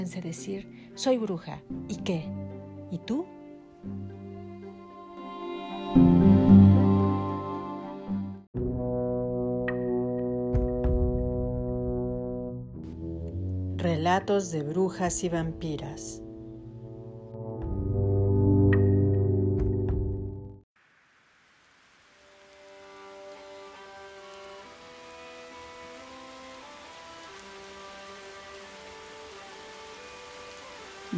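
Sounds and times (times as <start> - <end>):
speech: 0.0 - 4.2, 14.1 - 16.2
music: 0.0 - 20.7, 22.4 - 31.1
heavy rain pouring down: 20.8 - 31.1.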